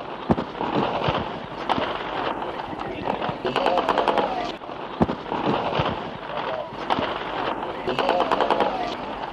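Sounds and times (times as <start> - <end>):
gunshots from occupying troops on a city square in Bratislava: 0.0 - 9.3
indistinct voices: 2.4 - 4.6, 6.2 - 9.3.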